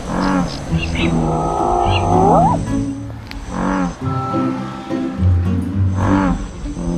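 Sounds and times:
American bullfrog calling at night in Rhine floodplains: 0.0s - 4.8s
other harmonic voices and night sounds: 0.0s - 6.9s.

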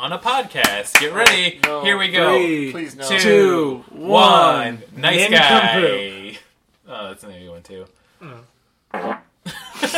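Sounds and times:
speech: 0.0s - 6.1s, 7.0s - 9.2s
fart sounds: 8.9s - 9.4s.

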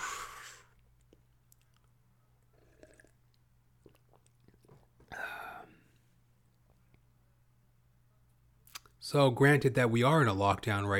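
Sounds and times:
breathy exhale: 0.0s - 0.7s
faint steady hum: 0.0s - 10.9s
person sipping water: 0.2s - 6.8s
wet mouth clicks and swallows: 0.7s - 5.2s
speech: 9.1s - 10.9s.

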